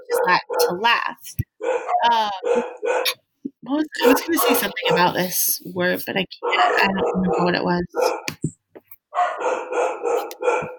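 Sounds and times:
dogs barking: 0.0s - 0.9s, 1.5s - 3.3s, 4.0s - 5.3s, 6.4s - 8.4s, 9.1s - 10.7s
speech: 0.2s - 8.2s.

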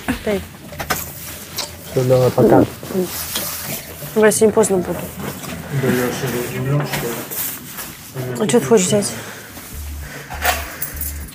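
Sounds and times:
speech: 0.2s - 0.6s, 2.0s - 3.4s, 4.2s - 7.4s, 8.2s - 9.4s
keys jangling: 10.4s - 11.3s.

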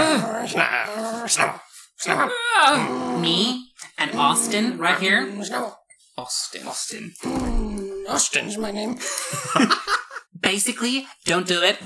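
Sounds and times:
person imitating a growling dog: 0.0s - 5.8s, 6.6s - 9.1s
speech: 0.5s - 11.8s
laughter: 9.0s - 10.3s.

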